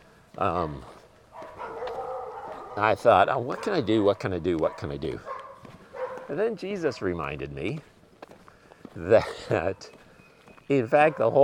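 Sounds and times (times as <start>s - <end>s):
speech: 0.4s - 1.0s, 2.8s - 5.3s, 6.3s - 7.9s, 9.0s - 10.0s, 10.7s - 11.4s
neighbors' dog barking: 1.3s - 6.4s, 11.0s - 11.4s
neighbors' dogs whining or howling: 1.4s - 3.8s.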